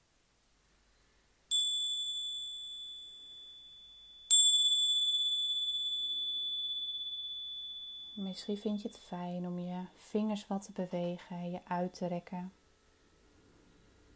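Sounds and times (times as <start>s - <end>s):
small meditation bell ringing: 1.5s - 10.0s
speech: 8.2s - 12.6s.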